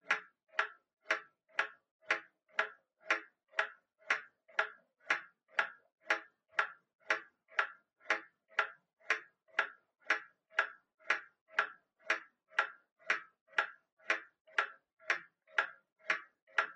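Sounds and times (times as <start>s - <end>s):
pendulum clock hardware ticking: 0.0s - 16.7s.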